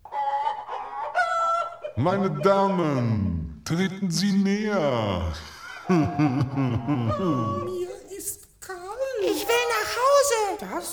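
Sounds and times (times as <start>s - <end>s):
hens clucking and cackling: 0.0s - 3.5s, 5.4s - 8.1s, 9.2s - 10.9s
speech: 2.0s - 7.8s, 10.2s - 10.9s
laughter: 5.2s - 7.8s.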